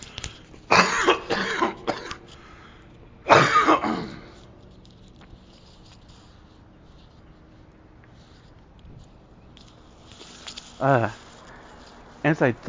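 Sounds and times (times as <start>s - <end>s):
faint hiss: 0.0s - 12.6s
person clearing throat: 0.7s - 2.3s, 3.3s - 4.4s
person coughing: 0.7s - 2.3s, 3.3s - 4.4s
speech: 10.8s - 11.2s, 12.3s - 12.6s.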